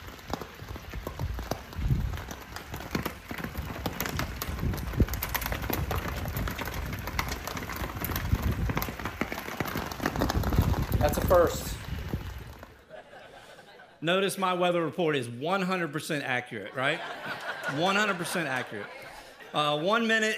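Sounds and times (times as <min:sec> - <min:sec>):
pea-size hail pelting the ground at a golf course in Estes Park Colorado: 0:00.0 - 0:12.8
speech: 0:11.0 - 0:11.7, 0:14.0 - 0:20.3
laughter: 0:12.8 - 0:14.0, 0:16.7 - 0:19.8.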